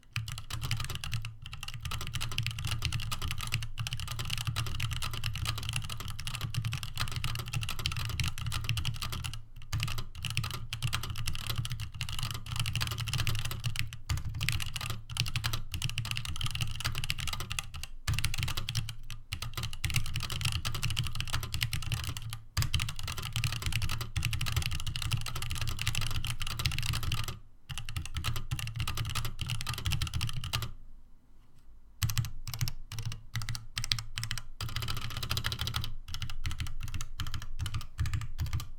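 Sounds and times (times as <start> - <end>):
typing: 0.0 - 30.7, 32.0 - 38.7.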